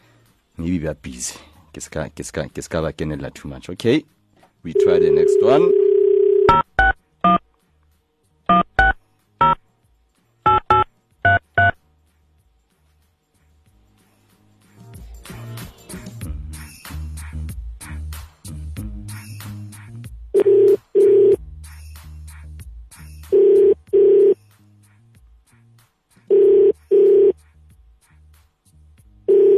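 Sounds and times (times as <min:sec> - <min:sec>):
speech: 0:00.6 - 0:05.8
telephone ringback tone: 0:04.7 - 0:06.7, 0:20.4 - 0:21.4, 0:23.3 - 0:24.4, 0:26.3 - 0:27.4, 0:29.3 - 0:29.5
touch-tone dialing beeps: 0:04.8 - 0:07.4, 0:08.5 - 0:09.6, 0:10.5 - 0:11.8, 0:29.3 - 0:29.5.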